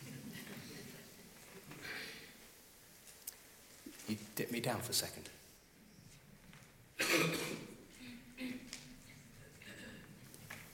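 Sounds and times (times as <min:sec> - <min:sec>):
speech: 0:04.1 - 0:05.4
audience members clearing throats: 0:07.0 - 0:08.7, 0:09.6 - 0:10.1
audience members coughing: 0:07.0 - 0:08.7, 0:09.6 - 0:10.1.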